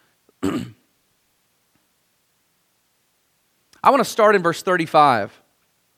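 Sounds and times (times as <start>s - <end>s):
speech: 0.4s - 0.8s, 3.8s - 5.4s
person clearing throat: 0.4s - 0.9s.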